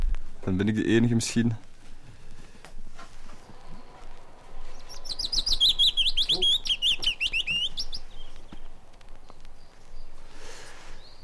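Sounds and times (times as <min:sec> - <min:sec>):
faint outdoor rustling: 0:00.0 - 0:11.2
speech: 0:00.4 - 0:01.7
willow warbler singing: 0:03.3 - 0:11.2.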